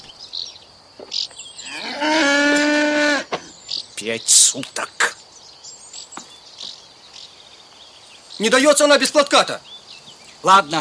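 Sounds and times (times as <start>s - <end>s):
cow mooing: 1.6s - 3.4s
speech: 4.0s - 5.2s, 8.4s - 9.7s, 10.4s - 10.7s.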